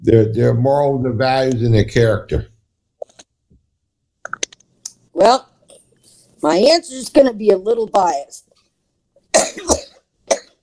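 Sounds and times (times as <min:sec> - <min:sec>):
speech: 0:00.0 - 0:02.5, 0:05.2 - 0:05.5, 0:06.4 - 0:08.5, 0:09.3 - 0:10.4
person coughing with a tickle in the throat: 0:09.3 - 0:10.6.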